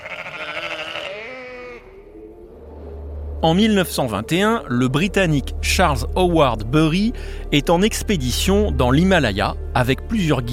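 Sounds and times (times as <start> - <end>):
mountain goat bleating: 0.0 - 2.0
speech: 3.4 - 10.5.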